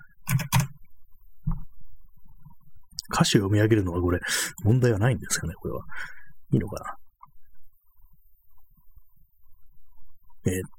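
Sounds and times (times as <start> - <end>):
loud clacky computer keyboard typing: 0.2 - 0.8
speech: 3.2 - 7.0, 10.4 - 10.7.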